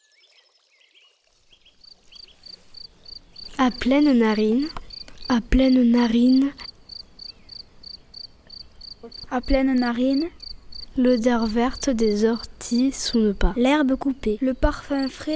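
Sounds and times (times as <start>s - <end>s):
crickets chirping across a field: 1.2s - 13.2s
speech: 3.6s - 6.6s, 9.3s - 10.4s, 11.0s - 15.3s.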